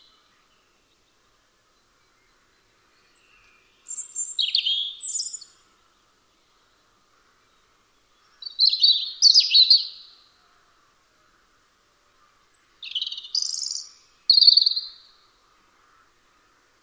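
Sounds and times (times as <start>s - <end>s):
European robin singing sweet high-pitched warbled and trilled notes: 1.7s - 5.7s, 7.4s - 10.3s, 12.5s - 16.6s.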